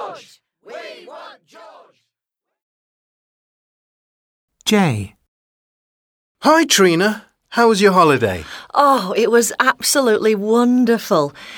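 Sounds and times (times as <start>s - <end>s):
crowd of fans shouting in rhythmic bursts: 0.0s - 2.0s
speech: 0.2s - 1.6s, 4.7s - 5.2s, 6.4s - 11.5s.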